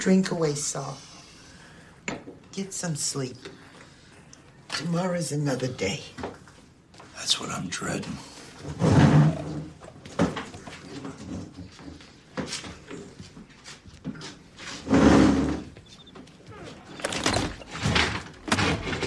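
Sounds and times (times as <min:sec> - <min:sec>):
speech: 0:00.0 - 0:01.2, 0:02.6 - 0:03.6, 0:04.7 - 0:06.4, 0:07.2 - 0:09.2
door opening and closing: 0:14.8 - 0:19.0.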